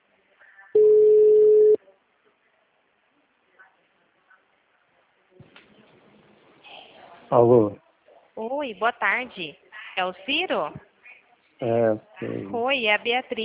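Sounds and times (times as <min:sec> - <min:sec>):
ringback tone on an outgoing telephone call: 0:00.8 - 0:01.8
speech: 0:07.3 - 0:07.8, 0:08.6 - 0:10.9, 0:11.6 - 0:13.4.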